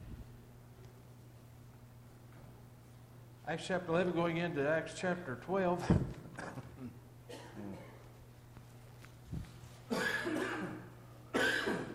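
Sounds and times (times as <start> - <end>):
speech: 3.5 - 7.8
person coughing raspily: 6.4 - 8.0, 9.9 - 11.9.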